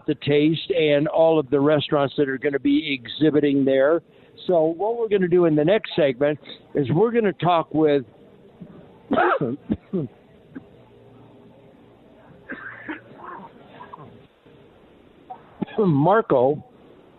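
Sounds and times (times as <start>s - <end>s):
speech: 0.1s - 10.2s, 15.8s - 16.7s
radio host having a harsh coughing fit: 9.1s - 10.1s, 12.5s - 14.1s.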